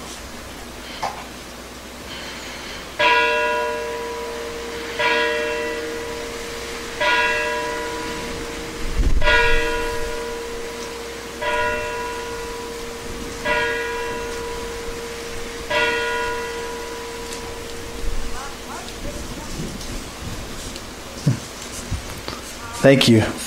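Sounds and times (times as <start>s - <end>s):
single church bell tolling during a worship service: 3.0s - 20.2s
speech: 22.8s - 23.4s.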